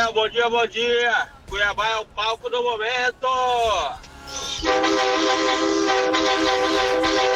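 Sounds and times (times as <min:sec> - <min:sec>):
speech: 0:00.1 - 0:07.3
vehicle horn blast: 0:04.3 - 0:07.3.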